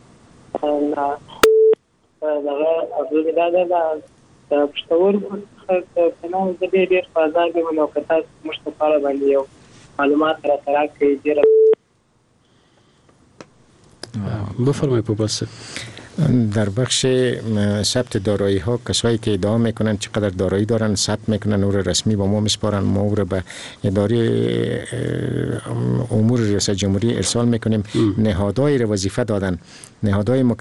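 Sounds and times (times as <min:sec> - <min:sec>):
speech: 0:00.6 - 0:01.4, 0:02.2 - 0:11.6, 0:14.6 - 0:30.6
telephone dialing and ringing tone beeping: 0:01.4 - 0:01.8, 0:11.4 - 0:11.8.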